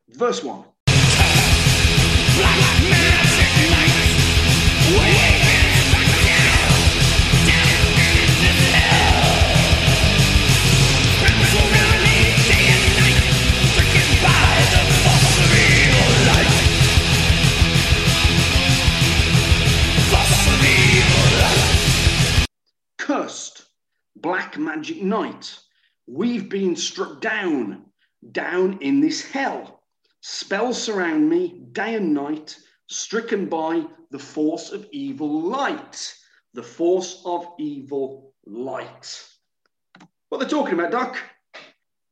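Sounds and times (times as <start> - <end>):
speech: 0.1 - 0.7, 4.9 - 5.4, 24.2 - 39.3, 40.0 - 41.3
harsh screamed vocals from a played metal song: 0.9 - 22.5
loud dense wall of distorted guitars: 0.9 - 22.5
pounding drums: 0.9 - 22.5.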